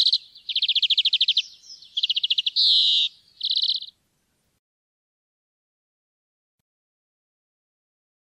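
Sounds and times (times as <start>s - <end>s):
European greenfinch trilling: 0.0s - 4.0s.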